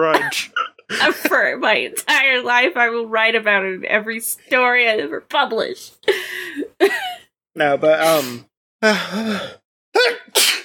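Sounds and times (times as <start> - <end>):
speech: 0.0 - 10.2
loud sneeze: 10.0 - 10.6.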